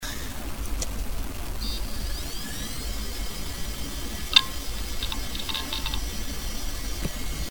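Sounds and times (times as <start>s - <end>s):
fully working Seagate U series hard drive running: 0.0s - 7.5s.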